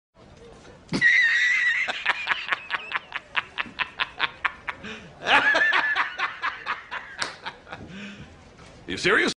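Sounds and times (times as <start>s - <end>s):
boss laugh: 1.0s - 7.9s.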